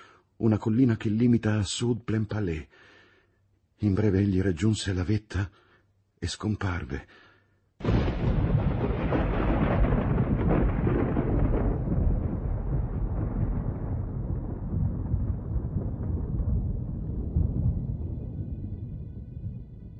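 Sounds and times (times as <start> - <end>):
speech: 0.4 - 2.9, 3.8 - 5.6, 6.2 - 7.2, 7.8 - 8.0
loud thunder crack rolling into a deep rumble: 7.8 - 19.9.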